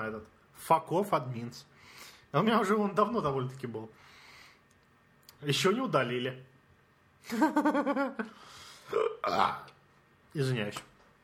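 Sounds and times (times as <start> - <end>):
speech: 0.0 - 4.1, 5.4 - 6.5, 7.2 - 9.7, 10.3 - 10.9
person burping: 8.8 - 9.8.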